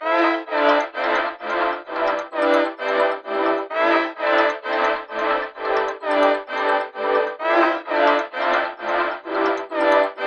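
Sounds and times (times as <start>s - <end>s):
melodies in A minor at 130 BPM: 0.4s - 10.2s.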